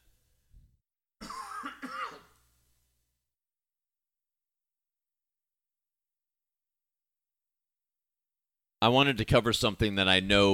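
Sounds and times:
forceful cough trailing into a throaty rasp: 1.2s - 2.4s
speech: 8.8s - 10.5s.

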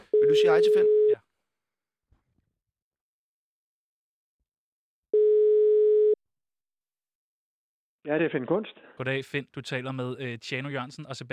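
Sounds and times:
speech: 0.3s - 1.0s, 8.1s - 11.3s
telephone ringing tone during outgoing call: 5.2s - 6.2s.

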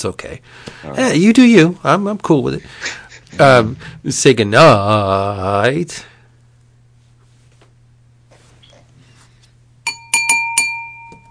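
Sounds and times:
speech: 0.0s - 6.1s
faint low hum: 0.0s - 11.3s
empty wine glass being tapped: 9.9s - 11.3s.

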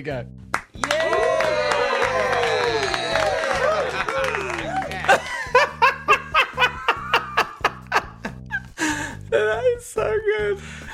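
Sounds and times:
speech: 0.0s - 1.2s, 9.4s - 10.8s
slow unenthusiastic crowd claps: 0.4s - 5.9s
sarcastic crowd murmuring chuckles and snickers: 2.1s - 8.7s.

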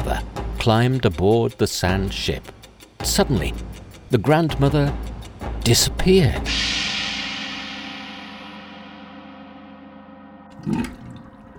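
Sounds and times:
speech: 0.1s - 6.7s
loud rush of water: 10.5s - 11.5s.

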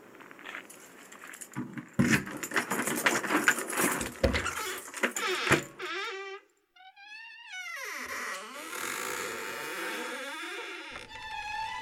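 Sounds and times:
bunch of keys jangling: 0.7s - 5.6s
door clunking and creaking open: 1.6s - 11.7s.

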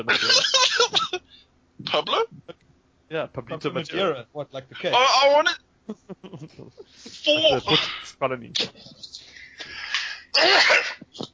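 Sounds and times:
speech: 0.0s - 0.6s, 1.9s - 2.4s, 3.1s - 9.0s, 10.4s - 10.9s
laughter: 5.9s - 8.0s
person sneezing: 7.0s - 8.8s, 9.5s - 11.3s.

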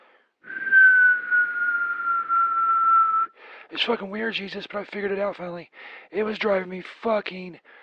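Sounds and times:
person whistling one long steady note imitating whistling urination: 0.5s - 3.3s
speech: 3.7s - 7.8s.

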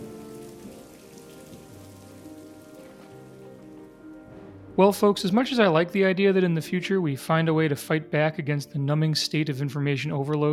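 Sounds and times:
steady rain pattering on a surface: 0.0s - 4.3s
speech: 4.8s - 10.5s.

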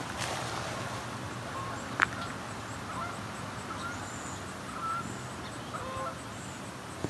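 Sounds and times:
steady outdoor noise: 0.0s - 7.0s
Canada geese honking landing on a river: 0.8s - 6.4s.

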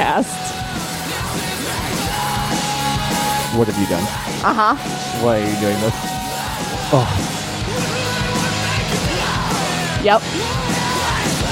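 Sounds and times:
loud dense music track with distorted instruments: 0.0s - 11.5s
speech: 0.2s - 0.6s, 3.5s - 6.2s, 6.9s - 7.9s, 10.0s - 10.7s
raw yelled male vocal shouting over distorted instruments: 3.4s - 4.4s, 5.0s - 7.3s.

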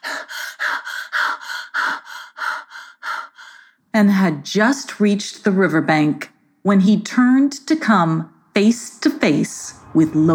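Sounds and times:
person panting hard after running: 0.0s - 3.7s
speech: 4.0s - 10.3s.

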